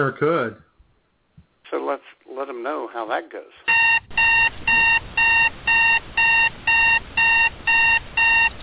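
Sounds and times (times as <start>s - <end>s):
speech: 0.0s - 0.7s, 1.7s - 4.0s
electronic alarm clock beeping: 3.7s - 8.6s.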